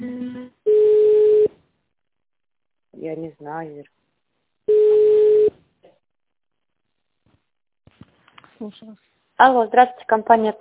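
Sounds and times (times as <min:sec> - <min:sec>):
buzzy multi-toned telephone tone while a call is transferred: 0:00.7 - 0:01.5, 0:04.7 - 0:05.5
speech: 0:03.0 - 0:04.0, 0:08.6 - 0:10.5.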